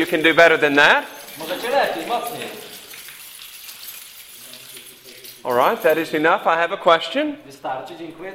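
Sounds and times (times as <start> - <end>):
speech: 0.0 - 2.7, 5.4 - 8.3
large crowd shaking keys vigorously: 0.0 - 6.6.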